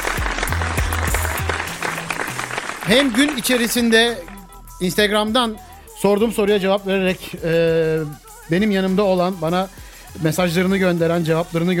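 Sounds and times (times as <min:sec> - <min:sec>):
crowd applauding: 0:00.0 - 0:04.7
speech: 0:02.9 - 0:11.7.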